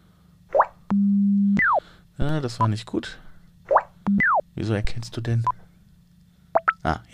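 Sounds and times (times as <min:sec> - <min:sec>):
handheld colour-recognition device beeping: 0:00.9 - 0:01.8, 0:04.0 - 0:04.5, 0:06.6 - 0:06.8
speech: 0:02.2 - 0:03.2, 0:04.6 - 0:05.6, 0:06.8 - 0:07.1.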